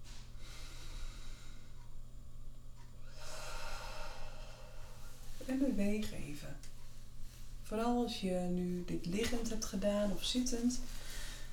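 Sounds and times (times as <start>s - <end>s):
deep breathing in through nose, out through mouth: 0.0s - 1.9s, 3.0s - 5.5s, 10.9s - 11.5s
low steady hum: 0.0s - 11.5s
speech: 5.5s - 6.8s, 7.7s - 11.0s.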